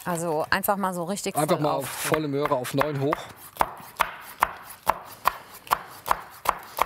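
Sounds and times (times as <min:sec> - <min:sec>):
speech: 0:00.0 - 0:03.7
knife chopping chili peppers on a cutting board: 0:02.4 - 0:06.8.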